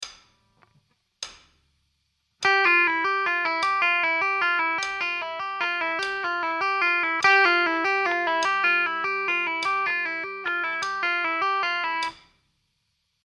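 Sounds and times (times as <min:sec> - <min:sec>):
guitar: 0:02.4 - 0:12.1.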